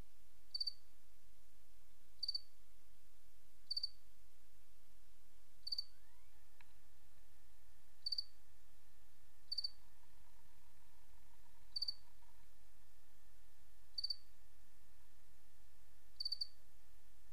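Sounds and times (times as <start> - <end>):
faint steady tones: 0.0 - 17.3
cricket chirping: 0.5 - 0.8, 2.2 - 2.5, 3.6 - 4.0, 5.6 - 6.4, 8.0 - 8.4, 9.5 - 12.5, 13.9 - 14.3, 16.2 - 16.6.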